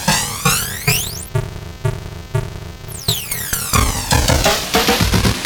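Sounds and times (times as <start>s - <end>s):
Game Boy sound samples with FPGA flanging: 0.1s - 1.3s, 2.9s - 5.3s.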